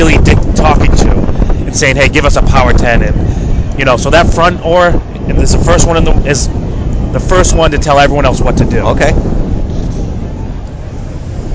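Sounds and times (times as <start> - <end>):
strong crosswind blowing over open water: 0.0 - 11.5
speech: 1.8 - 9.4.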